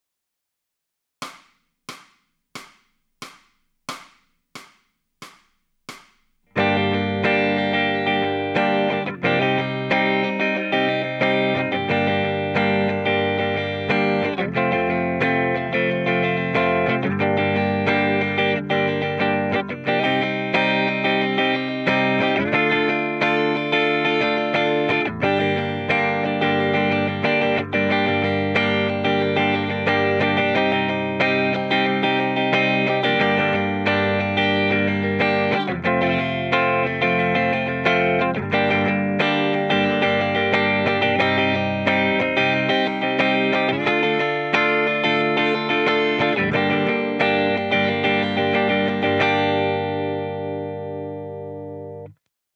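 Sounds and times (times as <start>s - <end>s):
lead backing track on electric guitar: 6.6s - 52.2s.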